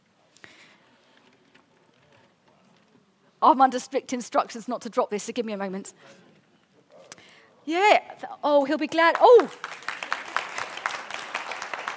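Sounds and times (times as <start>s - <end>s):
speech: 3.4s - 6.3s, 7.7s - 9.7s
audience round of applause: 9.1s - 11.9s.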